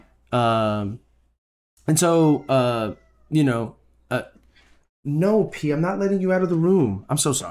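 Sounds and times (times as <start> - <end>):
speech: 0.3 - 1.0, 1.9 - 4.4, 5.0 - 7.5
cat shut inside a room meowing: 2.1 - 3.5.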